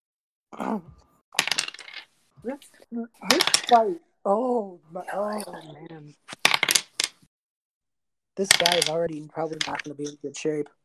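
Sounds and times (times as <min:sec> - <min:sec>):
speech: 0:00.5 - 0:01.0, 0:02.4 - 0:06.3, 0:08.4 - 0:10.8
dice rolled across a table for game attack damage: 0:01.4 - 0:04.0, 0:06.3 - 0:07.3, 0:08.4 - 0:10.2.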